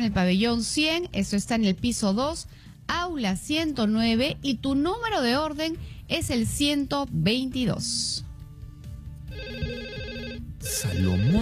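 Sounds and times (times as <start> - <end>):
speech: 0.0 - 8.3, 10.6 - 11.4
telephone electronic ringtone with warbling trill for an incoming call: 9.3 - 11.4.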